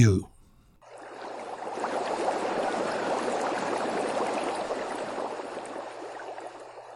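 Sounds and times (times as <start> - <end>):
speech: 0.0 - 0.3
water bubbling in a two-person hot tub: 0.8 - 6.9.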